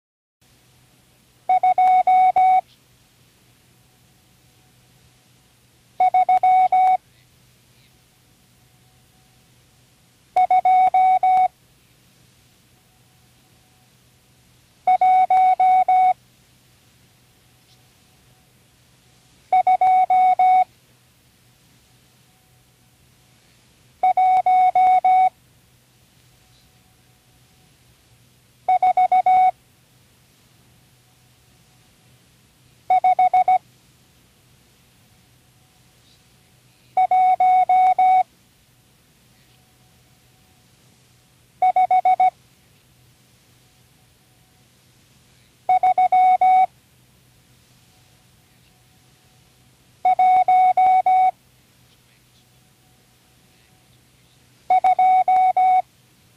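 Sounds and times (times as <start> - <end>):
Morse code signal: 1.5 - 2.7, 6.0 - 7.0, 10.4 - 11.6, 14.9 - 16.2, 19.5 - 20.7, 24.0 - 25.4, 28.7 - 29.6, 32.9 - 33.6, 37.0 - 38.3, 41.6 - 42.4, 45.7 - 46.7, 50.0 - 51.4, 54.7 - 55.9.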